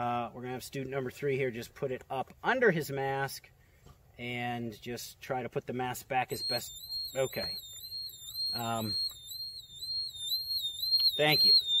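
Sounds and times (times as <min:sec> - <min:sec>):
speech: 0:00.0 - 0:03.6, 0:04.2 - 0:07.7, 0:08.5 - 0:09.2, 0:11.2 - 0:11.7
gas monitor alarm warbling in a shrill high-pitched tone: 0:06.3 - 0:11.7.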